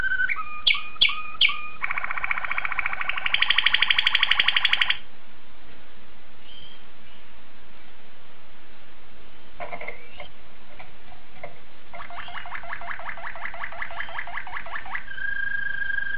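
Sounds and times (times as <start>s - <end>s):
domestic canary singing trill of sweeping notes: 0.0s - 5.0s, 11.9s - 16.1s.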